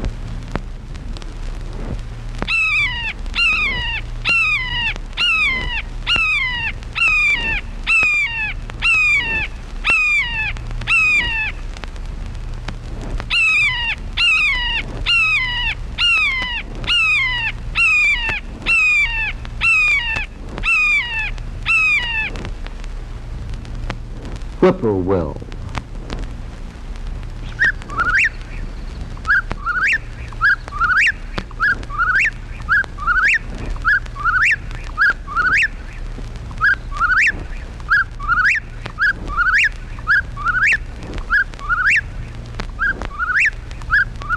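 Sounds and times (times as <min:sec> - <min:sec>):
faint low steady hum: 0:00.0 - 0:44.3
red-shouldered hawk shrill downslurred screaming calls: 0:02.5 - 0:11.7, 0:13.3 - 0:22.4, 0:27.4 - 0:36.0, 0:36.6 - 0:44.3
speech: 0:24.7 - 0:25.4.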